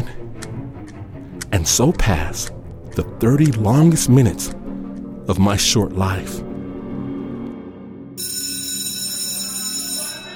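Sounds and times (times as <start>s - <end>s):
speech: 1.6s - 4.6s, 5.3s - 6.5s
electric school bell ringing: 8.2s - 10.3s.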